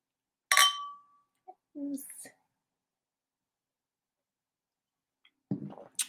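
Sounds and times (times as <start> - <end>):
glasses clinking in a Valentine's Day toast: 0.5 - 1.1.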